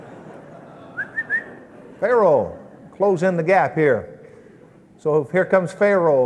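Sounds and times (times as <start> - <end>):
laughter: 0.0 - 3.0
faint steady hum: 0.0 - 6.2
person whistling to summon someone: 1.0 - 1.6
speech: 2.0 - 4.1, 5.0 - 6.2.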